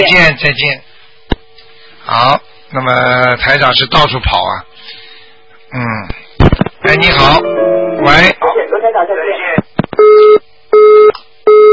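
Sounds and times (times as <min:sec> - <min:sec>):
speech: 0:00.0 - 0:00.9, 0:02.1 - 0:05.0, 0:05.7 - 0:06.2, 0:06.8 - 0:11.7
telephone busy signal after a dropped call: 0:10.0 - 0:11.7.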